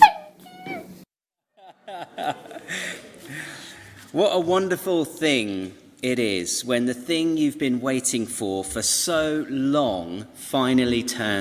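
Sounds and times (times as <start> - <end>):
puppy whimpering: 0.0 - 1.0
laughter: 1.6 - 4.1
speech: 1.9 - 3.4, 4.1 - 11.3.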